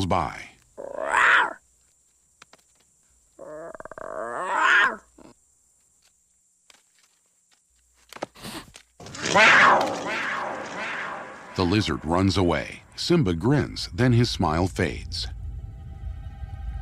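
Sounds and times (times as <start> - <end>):
speech: 0.0 - 0.5, 9.3 - 10.0, 11.6 - 15.4
young lion cub roaring: 0.8 - 1.6, 3.4 - 5.3, 9.0 - 12.2.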